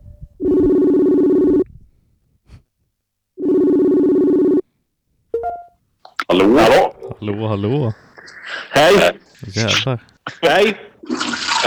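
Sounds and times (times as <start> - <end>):
telephone ringing for an incoming call: 0.4 - 1.6, 3.4 - 4.6
speech: 6.3 - 11.6.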